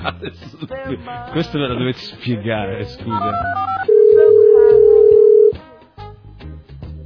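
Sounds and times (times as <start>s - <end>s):
speech: 0.0s - 3.9s
Skype incoming call ringing as a sustained electronic tone: 3.3s - 5.6s.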